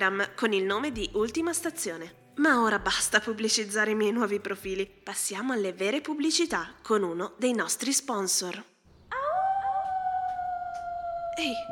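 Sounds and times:
speech: 0.0 - 8.7, 11.4 - 11.7
wolf howling: 9.1 - 11.7.

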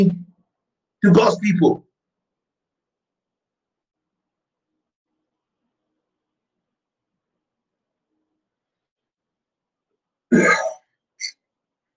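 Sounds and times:
speech: 0.0 - 0.2, 1.0 - 1.8, 10.3 - 10.6
person clearing throat with a harsh cough: 10.3 - 11.4.

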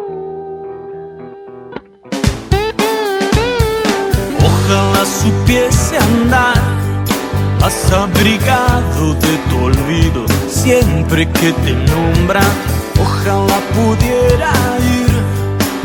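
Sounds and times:
crashing drums: 2.1 - 15.8
song with band: 2.1 - 15.8.

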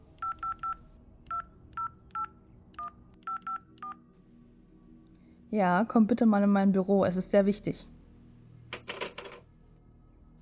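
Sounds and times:
quiet low hum: 0.0 - 10.4
telephone keypad dialing tones: 0.2 - 4.0
speech: 5.5 - 7.9.

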